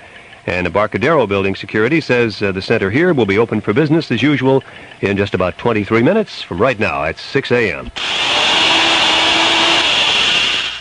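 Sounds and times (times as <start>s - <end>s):
speech: 0.4s - 8.3s
3/16-inch drill boring into a new puncture-sealing rubber tire as a test: 8.0s - 10.7s.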